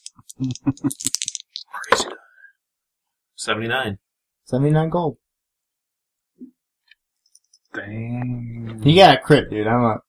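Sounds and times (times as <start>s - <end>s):
two ten-sided percentile dice clattering across a hard surface: 0.0s - 2.0s
speech: 0.4s - 2.2s, 3.4s - 5.2s, 7.8s - 10.0s.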